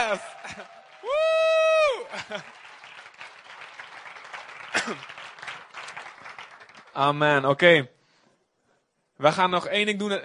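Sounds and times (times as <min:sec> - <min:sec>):
loud sustained whoop: 0:00.0 - 0:02.1
crowd clapping: 0:00.0 - 0:07.7
speech: 0:00.1 - 0:00.6, 0:02.3 - 0:02.6, 0:04.8 - 0:05.2, 0:07.0 - 0:08.0, 0:09.2 - 0:10.2.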